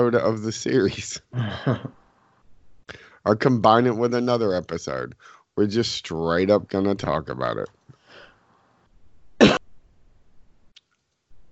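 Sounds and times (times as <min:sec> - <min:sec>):
speech: 0:00.0 - 0:02.0, 0:02.9 - 0:07.8
person coughing: 0:01.4 - 0:01.9, 0:09.4 - 0:09.6.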